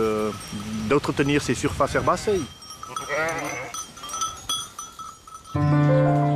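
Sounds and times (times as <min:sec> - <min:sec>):
speech: 0:00.0 - 0:02.6
faint outdoor noise: 0:00.0 - 0:06.3
sheep bleating: 0:02.0 - 0:03.8.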